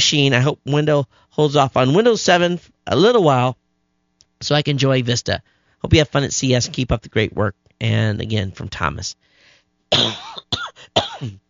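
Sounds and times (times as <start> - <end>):
speech: 0.1 - 3.6, 4.4 - 9.3, 9.9 - 10.5, 11.2 - 11.4
person coughing: 9.9 - 11.4.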